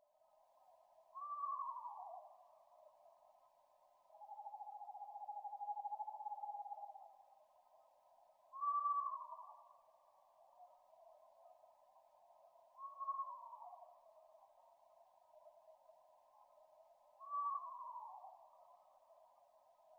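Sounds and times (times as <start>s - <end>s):
eastern screech owl: 1.2s - 2.4s, 4.2s - 7.0s, 8.5s - 9.7s, 12.8s - 14.0s, 17.2s - 18.6s.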